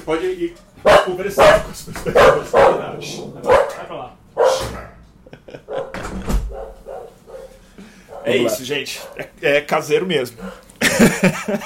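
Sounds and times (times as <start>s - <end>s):
speech: 0.0s - 4.7s, 8.2s - 11.6s
dog barking sharply: 0.8s - 5.0s, 5.6s - 9.3s, 10.4s - 10.7s
laughter: 1.6s - 3.5s, 5.2s - 5.9s, 10.8s - 11.6s.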